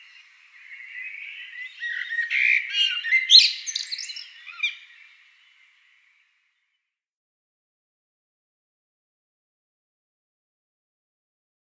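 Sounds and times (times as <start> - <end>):
Eurasian blackbird song: 0.0 - 5.7.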